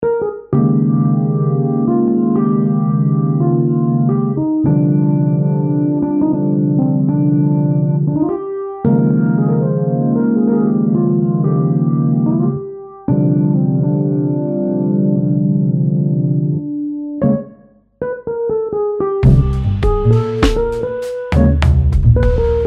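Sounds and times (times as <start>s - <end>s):
Pianet Orgue: 0.0s - 22.6s.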